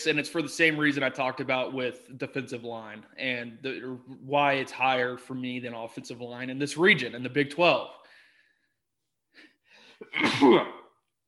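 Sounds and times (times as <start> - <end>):
speech: 0.0 - 8.0, 9.4 - 10.8
person sneezing: 10.0 - 11.0.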